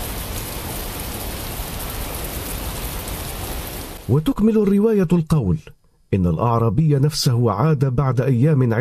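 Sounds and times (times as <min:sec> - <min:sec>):
steady dense rainfall: 0:00.0 - 0:04.5
speech: 0:04.1 - 0:08.7.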